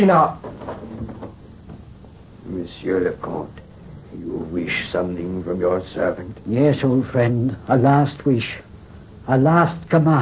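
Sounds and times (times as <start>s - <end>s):
speech: 0.0s - 0.4s, 2.5s - 8.7s, 9.3s - 10.2s
door opening with a short wooden creak: 0.4s - 1.8s.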